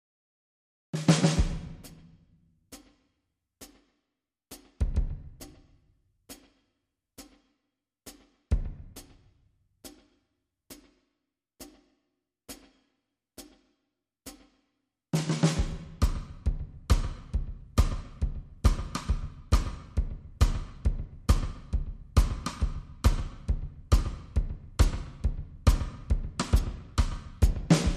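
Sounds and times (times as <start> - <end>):
clean drums: 1.0 - 3.0, 4.5 - 6.6, 8.1 - 11.0, 15.2 - 27.9.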